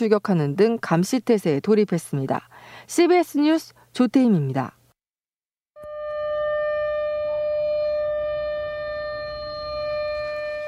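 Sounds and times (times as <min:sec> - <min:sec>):
speech: 0:00.0 - 0:04.8
civil defense air raid siren wailing for a nationwide civil defense drill: 0:05.8 - 0:10.6.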